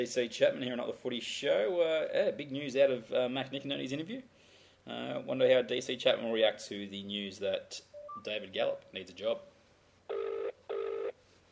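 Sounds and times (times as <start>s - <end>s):
speech: 0.0s - 9.5s
telephone ringback tone on a call: 10.1s - 11.2s.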